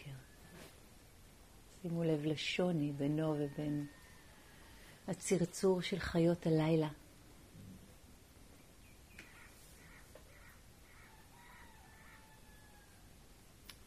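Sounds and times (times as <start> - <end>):
steady hiss of outdoor noise: 0.0 - 13.8
speech: 1.8 - 4.0, 5.1 - 7.0
crow cawing: 9.2 - 12.8.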